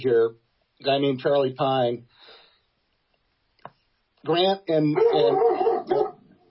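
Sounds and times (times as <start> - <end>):
speech: 0.0 - 2.4, 4.2 - 6.0
dog barking excitedly: 5.0 - 6.3.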